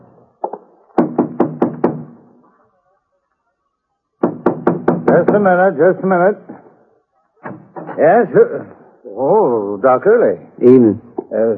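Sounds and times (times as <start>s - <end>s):
firm knocking on a carved mahogany front door: 1.0s - 2.1s, 4.2s - 5.5s
speech: 5.1s - 6.5s, 8.0s - 11.5s.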